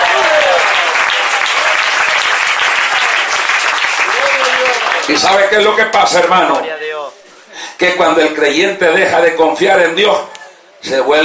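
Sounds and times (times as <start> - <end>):
audience applauding loudly: 0.0 - 6.6
speech: 5.1 - 6.9, 7.8 - 11.2.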